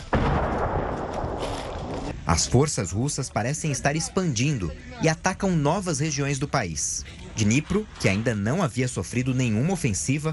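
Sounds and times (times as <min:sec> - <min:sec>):
sudden loud explosion or heavy gunfire blast: 0:00.0 - 0:02.2
speech: 0:02.3 - 0:10.3.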